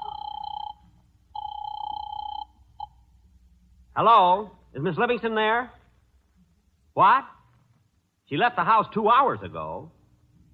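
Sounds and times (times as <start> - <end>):
telephone ringing over a phone line: 0.0 - 3.0
low hum: 0.0 - 10.5
speech: 4.0 - 5.8, 7.0 - 7.4, 8.3 - 10.0.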